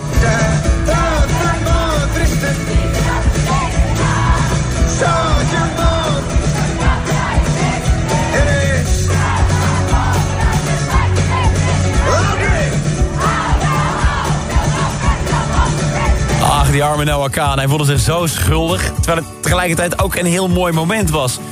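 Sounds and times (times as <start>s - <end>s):
large concert crowd singing along loudly: 0.0s - 16.8s
bass-heavy music: 0.0s - 21.4s
speech: 16.8s - 21.4s.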